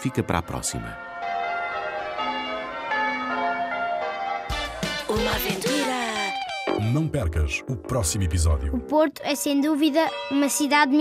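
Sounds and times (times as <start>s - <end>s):
speech: 0.0s - 1.3s, 5.2s - 5.7s, 6.8s - 11.0s
church bells ringing: 0.0s - 7.6s, 9.8s - 11.0s.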